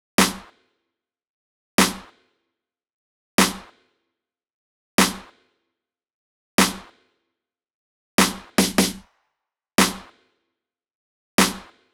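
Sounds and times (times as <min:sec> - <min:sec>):
snare drum in B minor: 0:00.2 - 0:00.5, 0:01.8 - 0:02.2, 0:03.4 - 0:03.7, 0:05.0 - 0:05.4, 0:06.6 - 0:07.0, 0:08.2 - 0:09.1, 0:09.8 - 0:10.2, 0:11.4 - 0:11.8.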